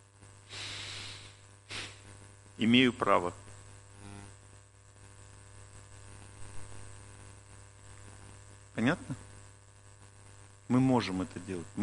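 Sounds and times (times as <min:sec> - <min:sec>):
faint low hum: 0:00.0 - 0:11.8
loud deliberate breath drawn sharply in through the nose: 0:00.4 - 0:02.1
speech: 0:02.6 - 0:03.4, 0:08.8 - 0:09.2, 0:10.7 - 0:11.8.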